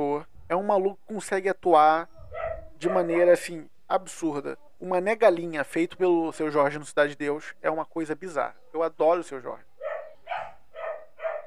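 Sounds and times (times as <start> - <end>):
speech: 0.0 - 2.2, 2.8 - 9.7
dog barking: 2.2 - 3.4, 9.8 - 11.4.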